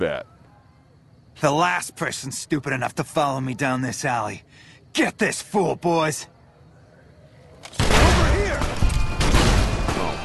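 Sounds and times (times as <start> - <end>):
speech: 0.0 - 0.3, 1.4 - 6.4
grenade explosions in a video game: 7.7 - 10.2.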